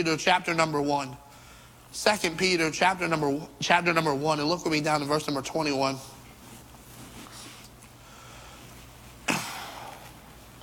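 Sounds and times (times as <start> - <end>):
speech: 0.0 - 1.2, 1.9 - 6.2
low steady hum: 0.0 - 10.6
person coughing: 9.3 - 10.0.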